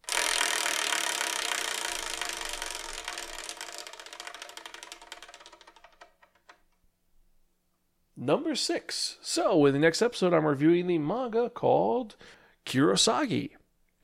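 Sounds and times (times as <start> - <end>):
prize wheel spinning with ratcheting clatter: 0.0 - 6.7
speech: 8.2 - 13.6.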